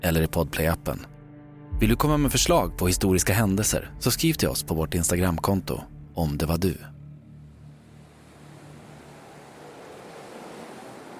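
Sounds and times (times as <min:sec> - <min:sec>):
speech: 0:00.0 - 0:01.1, 0:01.8 - 0:07.0
wind: 0:07.0 - 0:11.1
stormy ocean waves roaring: 0:07.3 - 0:11.1.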